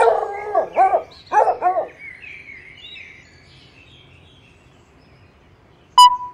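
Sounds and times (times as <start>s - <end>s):
small brown dog barking: 0.0s - 2.0s.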